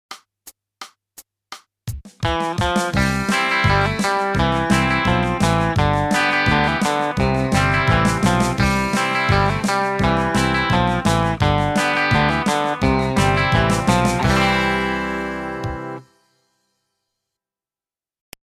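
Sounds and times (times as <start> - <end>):
country music: 2.3 - 16.1.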